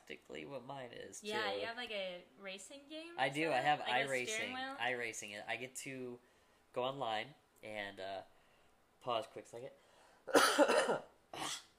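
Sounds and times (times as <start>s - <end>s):
speech: 0.1s - 8.3s, 9.0s - 11.5s
harsh raspy coughs: 10.3s - 11.7s.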